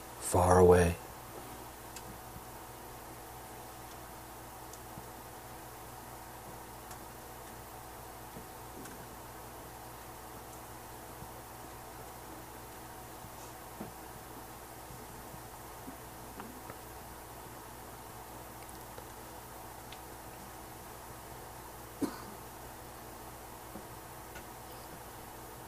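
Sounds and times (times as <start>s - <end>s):
steady low hiss: 0.0s - 25.6s
speech: 0.3s - 1.0s
cough: 22.0s - 22.4s.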